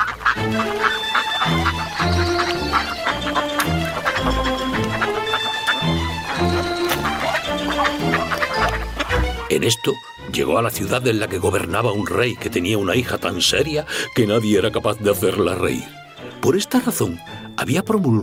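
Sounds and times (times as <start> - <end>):
goose honking and clucking: 0.0 - 10.2
speech: 0.4 - 1.1, 9.6 - 18.2.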